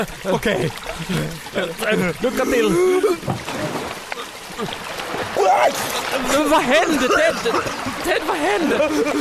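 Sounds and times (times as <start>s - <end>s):
speech: 0.0s - 3.8s, 4.6s - 9.1s
churning water splashing and gurgling: 0.0s - 9.1s
laughter: 6.0s - 9.1s.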